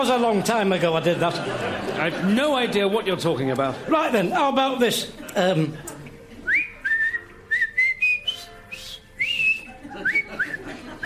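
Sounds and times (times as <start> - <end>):
speech: 0.0 - 5.9
laughter: 0.2 - 7.1, 9.2 - 11.0
person whistling a march: 6.5 - 11.0.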